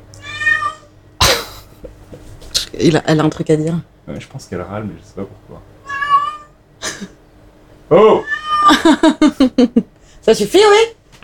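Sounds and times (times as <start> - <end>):
cat meowing: 0.2 - 1.0, 5.8 - 6.6, 8.0 - 8.9
speech: 2.7 - 5.8, 7.9 - 11.0
cat hissing: 5.8 - 6.6, 8.1 - 8.8
laughter: 6.8 - 7.2, 8.7 - 9.9.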